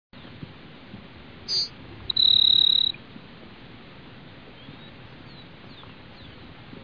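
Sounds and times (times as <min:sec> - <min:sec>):
quiet hiss: 0:00.2 - 0:06.8
Grassland Sparrow Ammodramus humeralis buzzy trill: 0:01.5 - 0:03.0.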